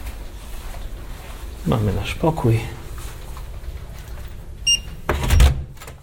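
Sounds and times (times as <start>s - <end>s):
speech: 1.7s - 2.8s
short electronic beep from a key card lock: 4.7s - 5.0s
hotel room door unlatching and swinging open with a clunk: 4.9s - 6.0s.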